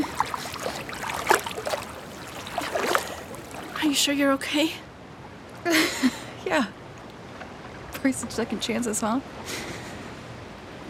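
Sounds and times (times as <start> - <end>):
water splashing and trickling as blood is washed off skin: 0.0 - 4.7
speech: 3.9 - 4.9, 5.6 - 6.7, 8.0 - 9.6.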